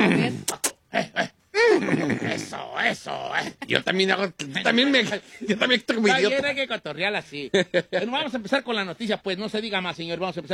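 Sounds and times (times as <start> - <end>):
man imitating a trained horse with his voice: 0.0 - 3.9
speech: 2.5 - 10.5.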